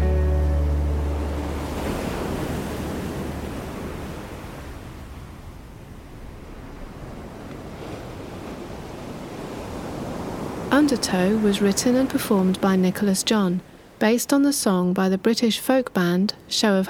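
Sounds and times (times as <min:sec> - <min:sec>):
ocean waves breaking on the shore: 0:00.0 - 0:16.8
speech: 0:10.8 - 0:16.8.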